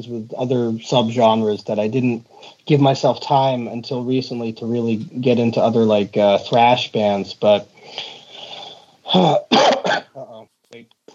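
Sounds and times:
speech: 0:00.0 - 0:08.2, 0:09.1 - 0:10.0
person coughing: 0:09.1 - 0:10.4.

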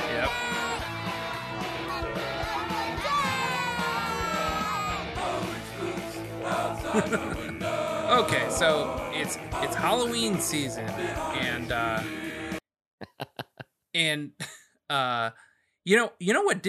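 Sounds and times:
loud sustained scream: 0:00.0 - 0:01.2, 0:01.8 - 0:05.3
dense driving music with thick instruments: 0:00.0 - 0:12.5
raw shouted vocals: 0:00.0 - 0:12.6
laughter: 0:06.5 - 0:08.5, 0:13.0 - 0:13.6
speech: 0:07.0 - 0:07.5, 0:08.2 - 0:12.3, 0:14.0 - 0:16.6.

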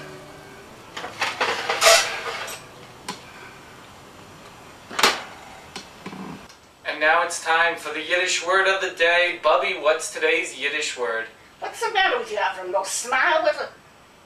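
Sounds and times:
pan of liver clattering and scraping into a broiler: 0:01.0 - 0:02.7
speech: 0:07.0 - 0:13.8.

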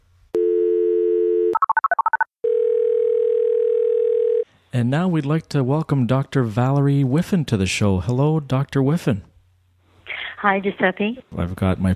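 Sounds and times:
steady telephone dial tone: 0:00.4 - 0:04.4
speech: 0:04.7 - 0:09.3, 0:10.4 - 0:11.9.

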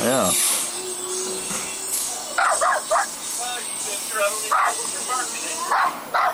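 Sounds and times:
steady hissing noise: 0:00.0 - 0:06.3
dog barking: 0:02.4 - 0:03.1, 0:04.5 - 0:04.8, 0:05.7 - 0:06.3
speech: 0:04.2 - 0:06.3.

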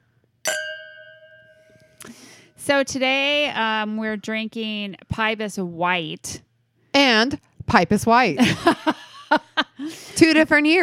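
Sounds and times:
wine glasses clinking in a toast: 0:00.5 - 0:02.1
speech: 0:02.0 - 0:06.5, 0:07.2 - 0:10.8.

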